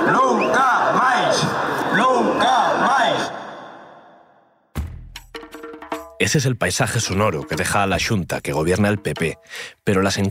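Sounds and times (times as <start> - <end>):
large protest crowd chanting a slogan in a plaza: 0.0 - 4.4
speech: 6.3 - 10.2.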